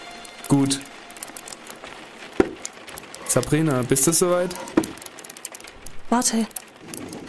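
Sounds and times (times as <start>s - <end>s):
soft crackling in a fireplace: 0.0s - 7.2s
speech: 0.5s - 1.0s, 3.3s - 4.9s, 6.1s - 6.6s
firewood log clunking into a fireplace: 2.4s - 2.6s.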